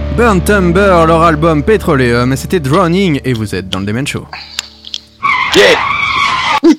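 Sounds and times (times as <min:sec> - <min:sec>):
speech: 0:00.2 - 0:04.6, 0:05.6 - 0:06.0
car tire skid sound effect jingle: 0:05.2 - 0:06.7.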